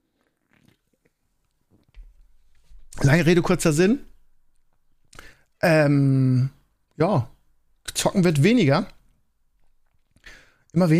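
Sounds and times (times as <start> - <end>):
person sipping soft drink: 0.0 - 1.2
speech: 3.0 - 4.1, 5.6 - 7.3, 8.0 - 9.0, 10.8 - 10.9.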